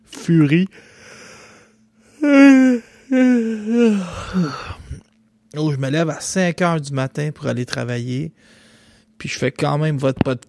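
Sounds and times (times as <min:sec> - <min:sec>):
speech: 0:00.3 - 0:00.9, 0:03.1 - 0:04.8, 0:05.5 - 0:08.6, 0:09.2 - 0:10.4
person yawning: 0:02.1 - 0:05.0.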